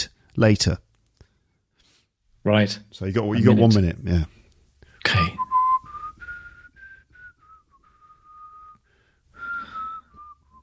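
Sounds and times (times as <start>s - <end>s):
speech: 0.0s - 0.9s, 2.4s - 4.4s
person whistling an idle meandering tune: 5.4s - 10.6s.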